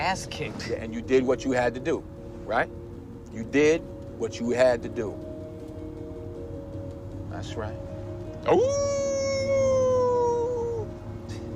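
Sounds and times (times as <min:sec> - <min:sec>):
speech: 0:00.1 - 0:02.8, 0:03.4 - 0:05.3, 0:07.3 - 0:07.8, 0:08.4 - 0:09.0
dog howling like a wolf: 0:08.5 - 0:10.9.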